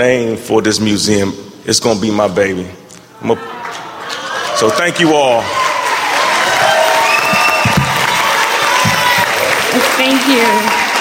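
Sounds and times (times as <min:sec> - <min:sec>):
speech: 0:00.0 - 0:03.8, 0:04.6 - 0:05.6, 0:10.0 - 0:10.8
scattered cheers and whoops: 0:03.4 - 0:10.9
crowd applauding: 0:03.5 - 0:10.9
brief shouts: 0:05.6 - 0:09.7.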